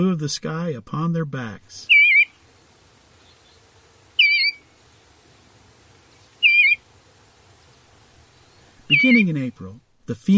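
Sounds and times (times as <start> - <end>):
speech: 0.0 - 2.0, 8.9 - 10.3
faint low hum: 0.0 - 10.3
bluebird call: 1.9 - 2.4, 3.2 - 4.7, 6.4 - 6.9, 8.3 - 9.4.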